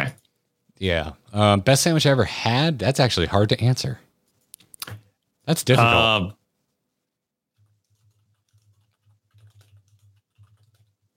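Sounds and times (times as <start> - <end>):
speech: 0.8 - 4.0, 5.5 - 6.4
typing on a computer keyboard: 7.6 - 11.1.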